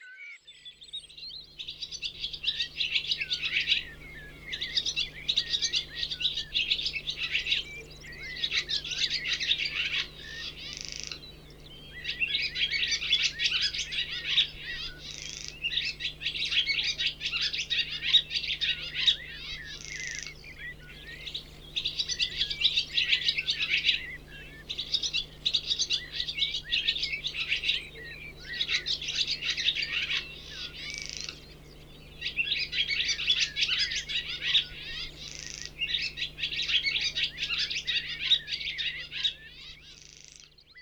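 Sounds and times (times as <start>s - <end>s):
barn swallow calling: 1.0s - 40.8s.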